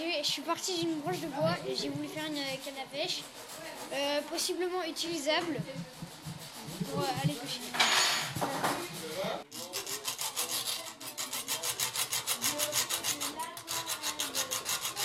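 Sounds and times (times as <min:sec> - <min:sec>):
speech: 0:00.0 - 0:06.2, 0:06.9 - 0:09.6
hacksaw cutting through metal: 0:09.5 - 0:15.0.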